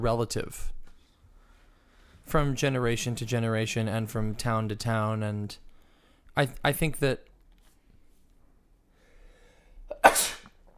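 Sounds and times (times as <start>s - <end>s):
speech: 0.0s - 0.8s, 2.3s - 5.6s, 6.4s - 7.3s
person sneezing: 9.9s - 10.6s.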